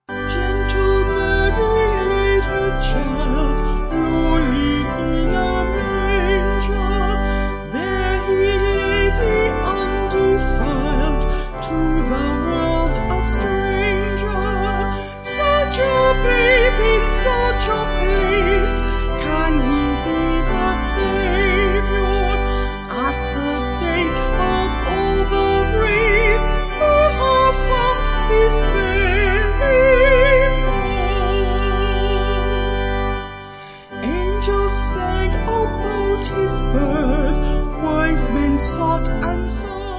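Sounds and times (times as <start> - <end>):
organ playing: 0.0 - 39.9
choir singing: 7.6 - 30.7, 34.0 - 39.9.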